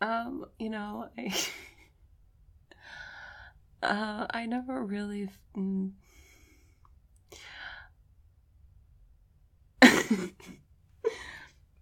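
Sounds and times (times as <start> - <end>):
speech: 0.0 - 1.7, 3.8 - 6.1, 10.1 - 10.6
person coughing: 9.8 - 10.6.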